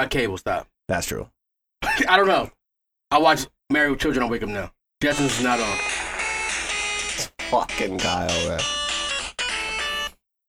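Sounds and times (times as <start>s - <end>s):
speech: 0.0s - 5.9s, 7.5s - 8.8s
bright tinny cartoon theme tune played from a phone speaker: 5.1s - 10.2s.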